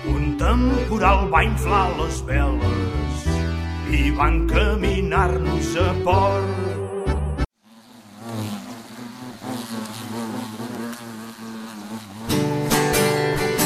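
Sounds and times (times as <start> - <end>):
speech: 0.4 - 3.3, 3.9 - 6.7
mosquitoes buzzing: 6.6 - 13.6.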